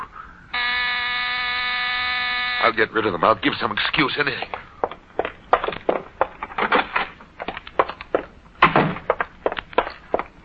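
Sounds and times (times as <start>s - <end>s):
faint hum: 0.0s - 10.4s
electric door buzzer: 0.5s - 2.9s
speech: 2.6s - 4.7s.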